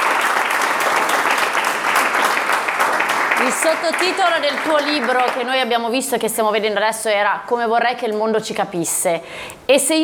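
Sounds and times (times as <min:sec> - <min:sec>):
applause for a guest during an interview: 0:00.0 - 0:05.8
speech: 0:03.4 - 0:10.0.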